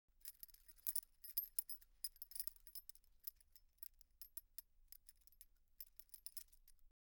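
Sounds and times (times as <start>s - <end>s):
earring jingling: 0.2s - 6.9s.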